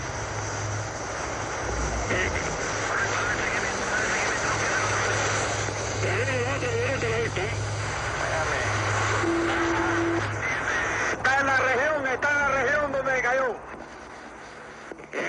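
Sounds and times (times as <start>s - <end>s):
light propeller airplane engine droning: 0.0s - 15.2s
voice: 2.0s - 13.7s, 15.1s - 15.2s.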